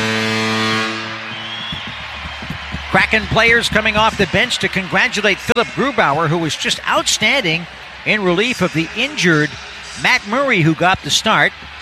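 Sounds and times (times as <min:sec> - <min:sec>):
foghorn blast at a hockey arena: 0:00.0 - 0:01.3
speech: 0:02.9 - 0:11.7.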